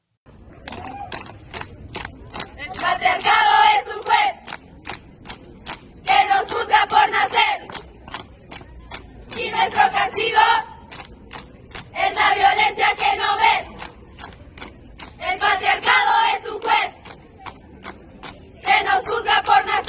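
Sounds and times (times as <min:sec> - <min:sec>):
group of female students chanting in unison at a protest performance: 0:02.6 - 0:04.4, 0:06.0 - 0:07.7, 0:09.3 - 0:10.8, 0:11.9 - 0:13.8, 0:15.2 - 0:17.0, 0:18.6 - 0:19.8.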